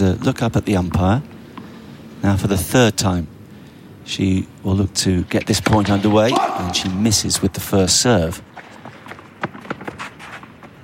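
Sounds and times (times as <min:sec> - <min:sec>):
speech: 0:00.0 - 0:01.3, 0:02.2 - 0:03.3, 0:04.1 - 0:08.7
low noise: 0:00.0 - 0:10.8
ball boy running footsteps on a tennis court: 0:08.5 - 0:10.8.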